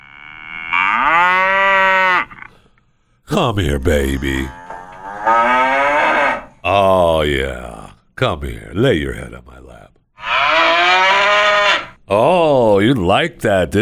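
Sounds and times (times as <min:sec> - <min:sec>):
cow mooing: 0:00.0 - 0:02.5, 0:04.4 - 0:06.6, 0:10.2 - 0:12.0
speech: 0:03.3 - 0:04.6, 0:06.7 - 0:10.0, 0:12.1 - 0:13.8.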